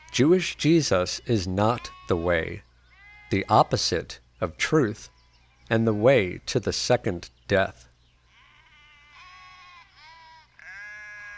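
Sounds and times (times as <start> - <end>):
speech: 0.2 - 2.7, 3.3 - 7.9
sheep bleating: 1.7 - 3.7, 8.3 - 11.3.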